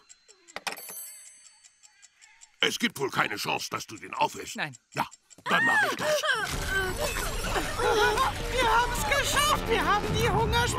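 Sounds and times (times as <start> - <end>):
alarm clock ticking: 0.0 - 10.7
speech: 2.6 - 10.7
laughter: 5.4 - 10.0.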